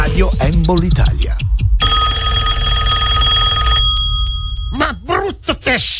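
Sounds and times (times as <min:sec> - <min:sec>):
speech: 0:00.2 - 0:01.2, 0:05.7 - 0:05.9
telephone bell ringing: 0:01.8 - 0:05.0.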